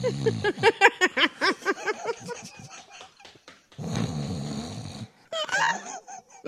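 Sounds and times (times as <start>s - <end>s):
person imitating snoring: 0.0s - 0.6s, 3.8s - 5.2s
laughter: 0.0s - 3.5s, 5.4s - 6.4s.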